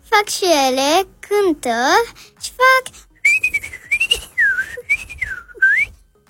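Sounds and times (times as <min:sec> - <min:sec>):
speech: 0:00.2 - 0:03.1
person whistling a tune to call birds: 0:03.1 - 0:06.0.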